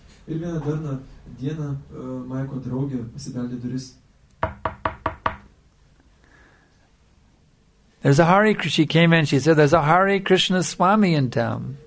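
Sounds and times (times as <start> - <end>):
speech: 0.3 - 4.0, 8.0 - 11.8
sharp knocks on a door: 4.4 - 5.5.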